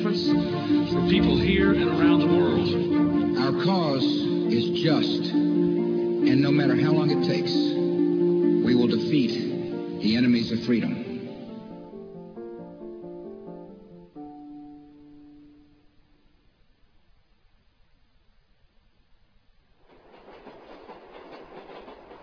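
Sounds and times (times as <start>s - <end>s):
elevated subway train running along the tracks: 0.0s - 6.2s, 19.9s - 22.2s
speech: 1.1s - 5.4s, 6.2s - 7.8s, 8.7s - 9.4s, 10.0s - 11.0s.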